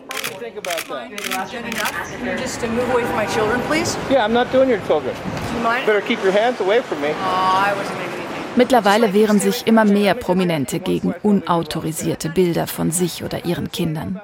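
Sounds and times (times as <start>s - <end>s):
paparazzo's camera shutter clicks: 0.0s - 2.0s
speech: 0.4s - 8.0s, 8.6s - 14.2s.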